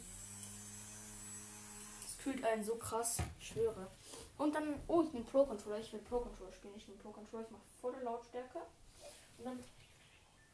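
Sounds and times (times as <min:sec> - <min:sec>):
small electric fan running: 0:00.0 - 0:02.2
speech: 0:02.2 - 0:09.8.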